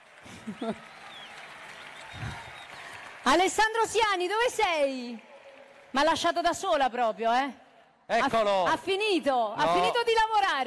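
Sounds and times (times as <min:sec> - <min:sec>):
large audience applauding: 0:00.0 - 0:07.0
speech: 0:00.2 - 0:01.0, 0:03.2 - 0:05.3, 0:05.9 - 0:10.6.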